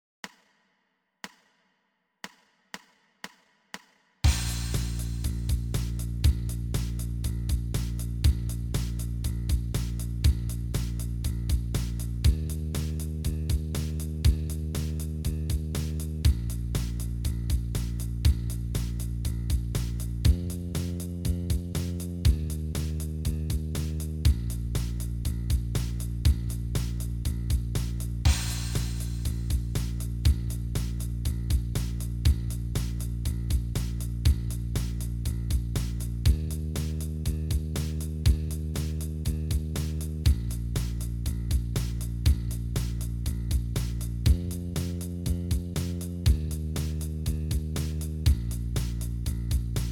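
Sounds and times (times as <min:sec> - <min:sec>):
blues bass line: 0:04.3 - 0:49.8.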